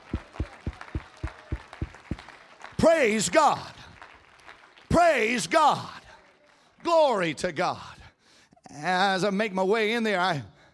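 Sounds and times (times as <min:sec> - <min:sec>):
church congregation clapping hands in a steady rhythm: 0:00.0 - 0:07.4
speech: 0:02.8 - 0:03.8, 0:05.0 - 0:06.0, 0:06.8 - 0:07.9, 0:08.7 - 0:10.5.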